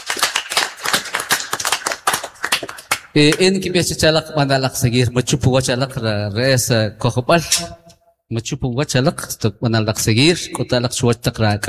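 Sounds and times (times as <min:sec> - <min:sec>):
crowd applauding: 0:00.0 - 0:03.2
speech: 0:02.6 - 0:11.6.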